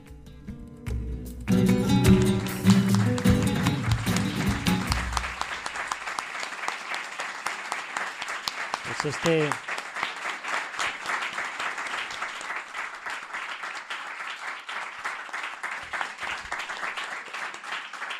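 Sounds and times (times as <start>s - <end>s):
large audience applauding: 1.5s - 18.1s
speech: 9.0s - 9.7s.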